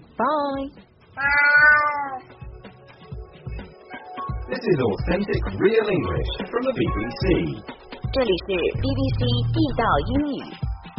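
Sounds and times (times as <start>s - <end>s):
speech: 0.2s - 2.4s, 4.5s - 10.6s
cat meowing: 1.2s - 2.4s.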